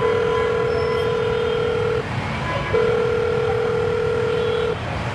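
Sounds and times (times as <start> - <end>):
telephone dial tone as a call is placed: 0.0 - 2.1, 2.8 - 4.8.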